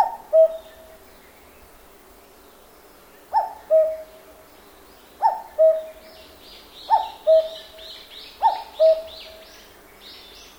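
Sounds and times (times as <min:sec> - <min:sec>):
cuckoo calling in a forest in Japan: 0:00.0 - 0:01.0, 0:03.3 - 0:04.2, 0:05.2 - 0:06.1, 0:06.9 - 0:09.4.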